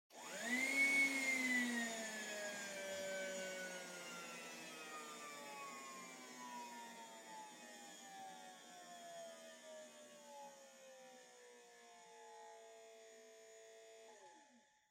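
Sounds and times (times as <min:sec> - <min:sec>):
distant vacuum cleaner with battery dying: 0:00.1 - 0:08.5.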